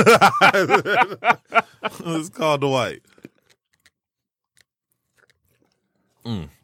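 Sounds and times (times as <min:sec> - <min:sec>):
laughter: 0:00.0 - 0:02.6
speech: 0:00.0 - 0:03.1, 0:06.2 - 0:06.6
wet mouth clicks and smacks: 0:03.1 - 0:04.0, 0:04.6 - 0:05.8.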